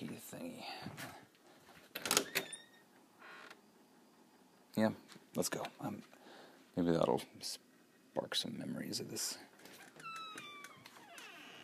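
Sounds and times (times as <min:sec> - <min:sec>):
door creaking open with squealing hinge: 0:01.9 - 0:03.7, 0:09.6 - 0:11.6
speech: 0:04.8 - 0:06.2, 0:06.8 - 0:09.5.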